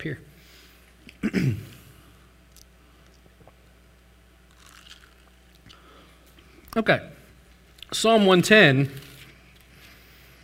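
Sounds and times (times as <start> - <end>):
speech: 0.0 - 0.3, 1.2 - 1.8, 6.8 - 7.2, 7.9 - 9.1
person swallowing a quick sip of water: 3.2 - 3.7.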